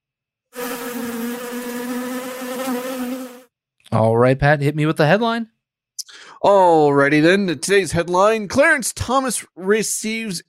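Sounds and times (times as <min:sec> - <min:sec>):
bee buzzing: 0:00.6 - 0:03.5
speech: 0:03.9 - 0:05.5, 0:06.4 - 0:10.4.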